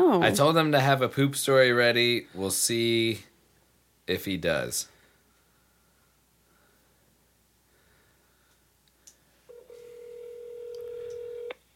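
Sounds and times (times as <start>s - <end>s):
speech: 0.1s - 3.3s, 4.1s - 4.9s
phone line electronic ringing tone: 9.5s - 11.5s.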